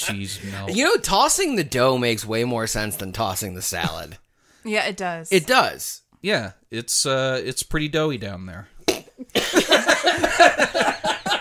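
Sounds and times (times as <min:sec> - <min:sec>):
speech: 0:00.0 - 0:08.7, 0:09.3 - 0:11.2
person sputtering and coughing after choking on a drink: 0:08.8 - 0:09.9
laughter: 0:09.3 - 0:11.4.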